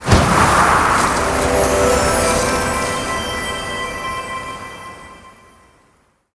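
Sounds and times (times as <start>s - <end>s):
pollen firework boom: 0.0s - 2.9s.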